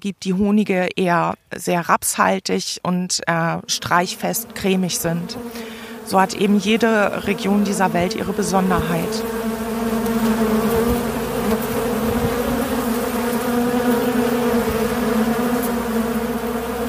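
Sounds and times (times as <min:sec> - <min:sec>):
speech: 0:00.0 - 0:10.6
many honeybees buzzing inside a hive: 0:03.3 - 0:16.8.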